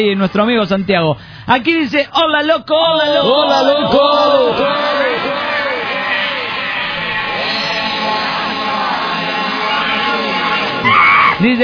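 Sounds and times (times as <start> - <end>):
speech: 0.0 - 5.0, 11.4 - 11.6
loud crowd yelling, whooping and cheering: 3.1 - 11.5.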